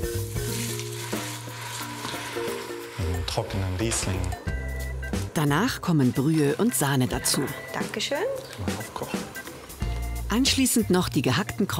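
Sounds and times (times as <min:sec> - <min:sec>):
onions sweating in butter: 0:00.0 - 0:07.4
speech: 0:03.3 - 0:04.5, 0:05.4 - 0:09.2, 0:10.3 - 0:11.7.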